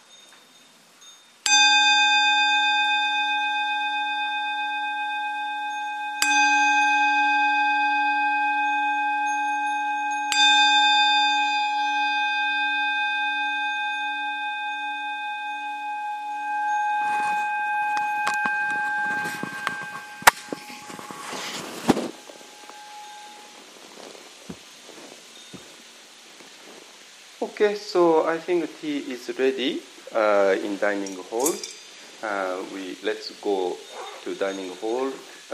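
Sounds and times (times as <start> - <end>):
bell rung to close a meditation talk: 0.0 - 23.6, 31.0 - 32.1
speech: 27.6 - 35.5.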